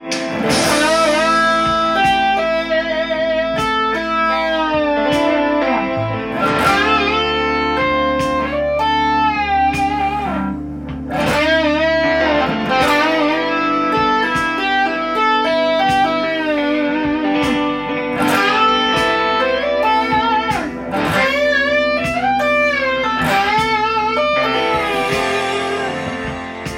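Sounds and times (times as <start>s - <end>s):
A minor and G minor pentatonic scale melody: 0.0s - 26.7s.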